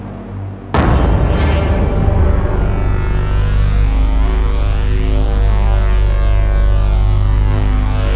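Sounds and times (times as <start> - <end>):
dark cinematic low rumble: 0.7 - 8.1
sudden cinematic hit: 0.8 - 5.7
dense ringing shimmering wall of sound: 0.8 - 8.1.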